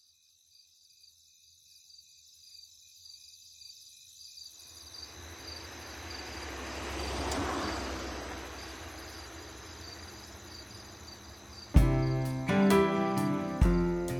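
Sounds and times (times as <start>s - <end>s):
crickets chirping: 0.0s - 14.1s
vehicle passing by: 4.9s - 12.5s.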